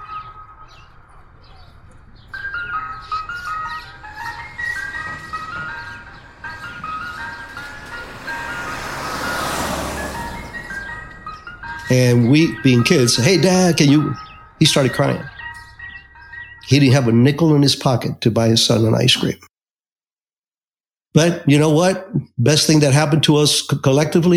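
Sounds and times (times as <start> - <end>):
ice cream truck jingle: 0.0 - 19.4
low outdoor road rumble: 0.0 - 19.4
speech: 11.9 - 15.3, 16.7 - 19.5, 21.2 - 24.3.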